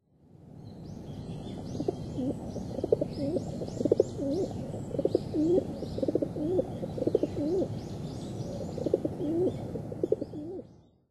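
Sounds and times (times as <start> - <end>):
rock dove calling: 1.7 - 7.7, 8.5 - 10.6.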